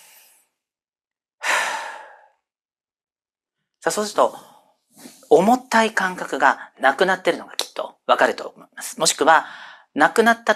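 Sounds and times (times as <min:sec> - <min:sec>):
deep breath during a guided meditation exercise: 0:00.0 - 0:00.6, 0:01.4 - 0:02.4, 0:09.5 - 0:09.9
speech: 0:03.8 - 0:10.5.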